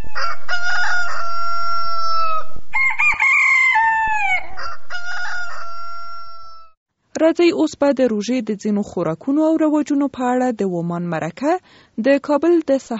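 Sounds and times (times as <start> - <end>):
rooster crowing: 0.0 - 6.8
speech: 0.2 - 1.0, 7.2 - 12.9.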